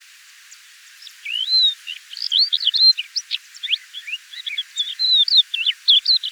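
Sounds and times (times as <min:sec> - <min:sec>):
crested lark Galerida cristata singing: 0:00.5 - 0:06.3.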